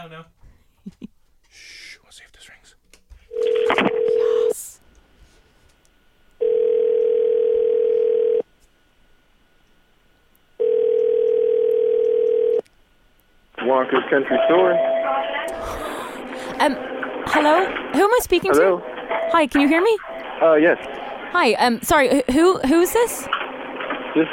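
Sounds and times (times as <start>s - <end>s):
speech: 0.0s - 2.8s, 13.8s - 15.8s, 16.6s - 23.4s
ringback tones on an outgoing telephone call: 3.3s - 4.5s, 6.4s - 8.4s, 10.6s - 12.6s.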